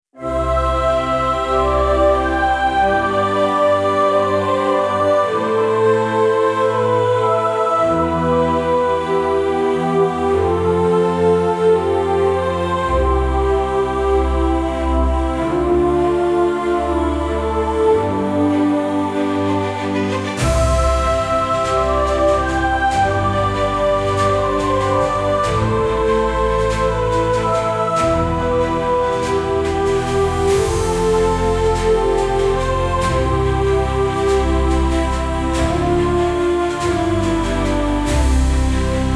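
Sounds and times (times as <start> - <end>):
95 bpm instrumental orchestral choir melody: 0.1 - 39.1.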